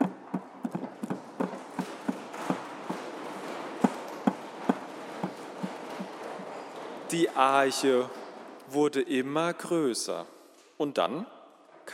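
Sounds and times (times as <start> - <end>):
hand knocking imitating hammering while building: 0.0 - 3.2, 3.8 - 6.5
speech: 7.1 - 11.3.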